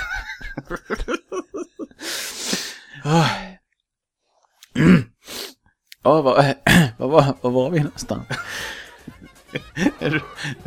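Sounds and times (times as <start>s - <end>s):
laughter: 0.0s - 2.0s, 8.2s - 10.6s
speech: 0.7s - 1.6s, 3.0s - 3.4s, 6.0s - 8.8s, 9.5s - 10.6s
person clearing throat: 4.7s - 5.2s
person coughing hard: 4.7s - 5.2s.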